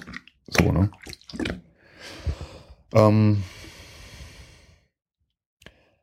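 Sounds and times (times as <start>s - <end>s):
water squelching between a person's arm and body: 0.0s - 1.7s
speech: 0.6s - 1.5s, 2.9s - 3.6s.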